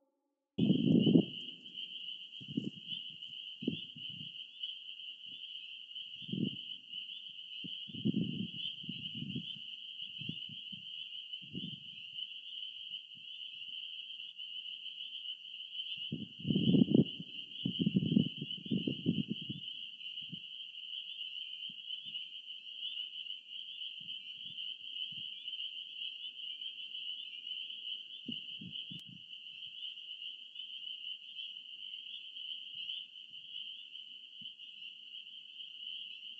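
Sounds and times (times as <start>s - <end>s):
frogs croaking: 0.6s - 36.3s
insect trill: 0.6s - 36.3s.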